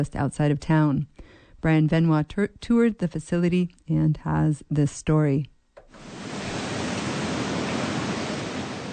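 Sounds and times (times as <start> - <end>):
speech: 0.0 - 6.2
water running through hatchery fish tanks: 5.9 - 8.9.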